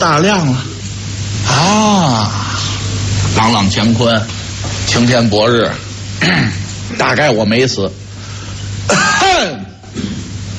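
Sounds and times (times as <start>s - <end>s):
speech: 0.0s - 0.7s, 1.5s - 2.4s, 3.4s - 8.0s, 8.9s - 10.1s
harsh cough with throat-clearing rasp: 6.2s - 6.7s, 8.9s - 10.4s.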